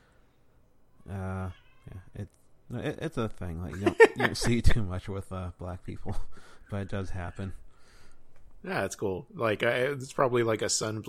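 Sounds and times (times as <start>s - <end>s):
pet cats meowing: 1.0s - 2.1s
speech: 2.2s - 7.6s, 8.6s - 11.0s
laughter: 3.7s - 4.8s.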